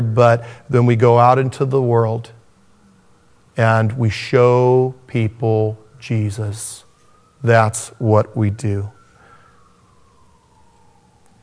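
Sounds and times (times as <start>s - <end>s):
speech: 0.0s - 2.4s, 3.6s - 6.8s, 7.4s - 9.0s
emergency vehicle siren wailing: 2.3s - 11.4s.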